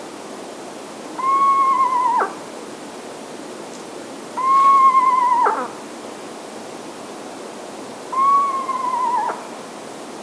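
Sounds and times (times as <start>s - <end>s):
background hiss: 0.0s - 10.2s
Eastern Screech Owl Megascops asio tremulous low trills: 1.2s - 2.4s, 4.4s - 5.7s, 8.1s - 9.5s.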